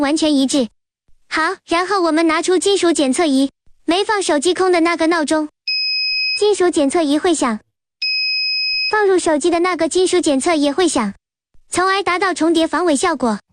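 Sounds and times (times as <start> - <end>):
person talking: 1.3 - 5.5, 6.4 - 7.6, 8.9 - 13.4
metal detector alarm beep: 5.7 - 6.5, 8.0 - 9.0.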